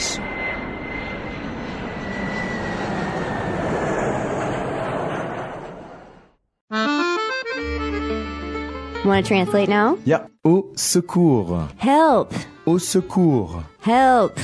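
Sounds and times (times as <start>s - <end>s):
airplane engine droning as the aircraft passes overhead: 0.0s - 6.4s
music: 6.7s - 14.4s
speech: 9.0s - 14.4s.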